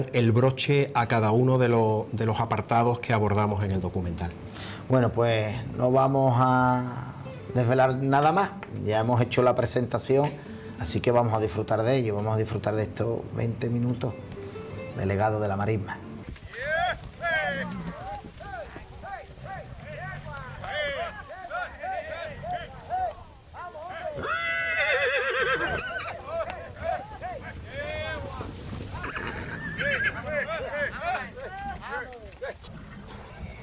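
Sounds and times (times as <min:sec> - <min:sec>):
speech: 0:00.0 - 0:14.2, 0:15.0 - 0:16.0
hooves of a herd of mares clip-clopping: 0:16.2 - 0:33.6
rushing windy outdoor near the beaches of El Rocío: 0:16.2 - 0:33.6
herders calling: 0:16.3 - 0:33.6
mares whinnying: 0:16.3 - 0:33.6.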